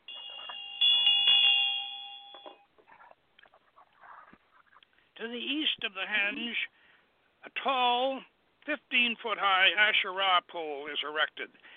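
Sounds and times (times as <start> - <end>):
small ritual altar bell ringing: 0.0 - 2.7
speech: 5.2 - 6.8, 7.5 - 11.7.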